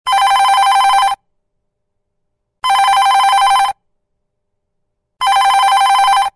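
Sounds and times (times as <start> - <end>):
old Panasonic phone ringtone ringing: 0.1 - 1.2, 2.6 - 3.8, 5.2 - 6.3.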